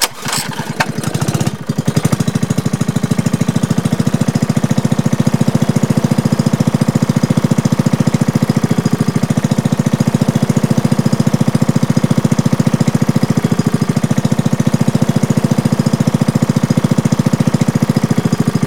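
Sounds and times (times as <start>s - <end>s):
go-kart engine starting: 0.0s - 18.6s.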